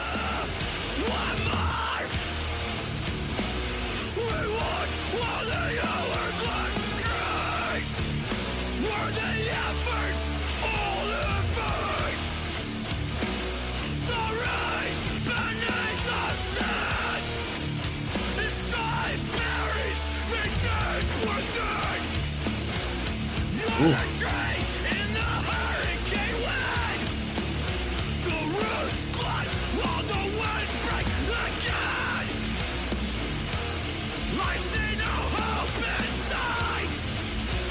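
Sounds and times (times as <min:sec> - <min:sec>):
driving guitars: 0:00.0 - 0:37.6
drums: 0:00.0 - 0:37.6
loud dense rock track with harsh raw shouted vocals: 0:00.0 - 0:37.6.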